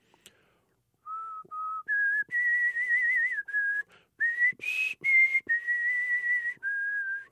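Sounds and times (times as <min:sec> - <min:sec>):
man whistling a slow hymn melody: 0:01.0 - 0:07.3.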